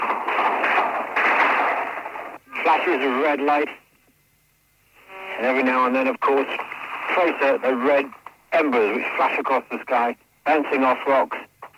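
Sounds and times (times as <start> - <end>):
gunfire at night: 0.0 - 2.3
speech: 2.7 - 3.8, 5.4 - 11.4.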